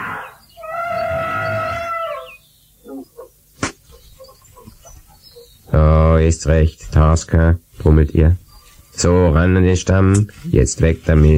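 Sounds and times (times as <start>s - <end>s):
elephant trumpeting in the jungle: 0.0s - 5.6s
sharp crack: 3.6s - 4.0s
speech: 6.2s - 8.4s, 9.0s - 11.3s.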